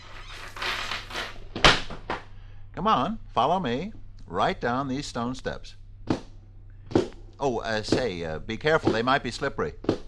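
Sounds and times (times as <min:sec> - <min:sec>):
trap door creaking open: 0:00.0 - 0:02.3
speech: 0:02.8 - 0:05.8, 0:07.4 - 0:09.9.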